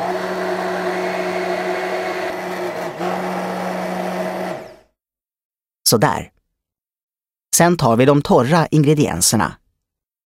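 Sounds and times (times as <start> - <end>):
electric mixer whisking eggs and sugar: 0.0 - 4.9
speech: 5.9 - 6.4, 7.6 - 9.6.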